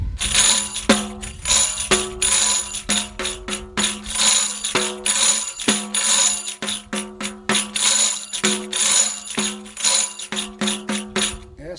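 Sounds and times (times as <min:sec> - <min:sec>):
march drumbeat: 0:00.2 - 0:11.6.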